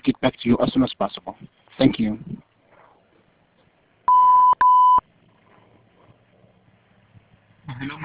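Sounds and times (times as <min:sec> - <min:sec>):
speech: 0:00.2 - 0:02.4, 0:07.8 - 0:08.0
voicemail electronic recording beeps: 0:04.1 - 0:05.0.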